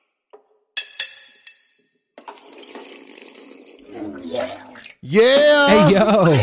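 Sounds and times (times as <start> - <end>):
glasses clinking together in a toast: 0.8 - 1.8
steady rush of liquid sloshing or pouring: 2.2 - 5.0
speech: 4.2 - 6.4
laughter: 5.1 - 6.4.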